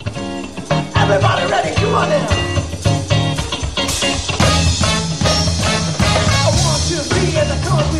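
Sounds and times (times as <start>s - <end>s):
funk music with busy bass and brass-like stabs playing at a party: 0.0s - 7.9s
speech: 1.1s - 2.6s.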